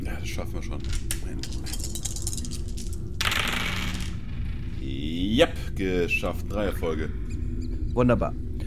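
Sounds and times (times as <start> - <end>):
low steady hum: 0.0 - 8.6
speech: 0.3 - 2.0, 4.8 - 7.3, 8.0 - 8.4
dice clattering and rattling across a hard surface: 0.8 - 4.4.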